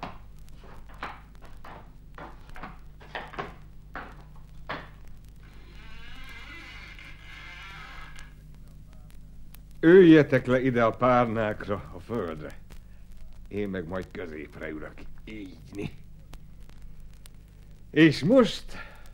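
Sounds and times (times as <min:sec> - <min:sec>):
steady low hum: 0:00.0 - 0:19.1
door creaking open: 0:04.8 - 0:08.4
speech: 0:09.8 - 0:12.6, 0:13.5 - 0:16.0, 0:18.0 - 0:18.9.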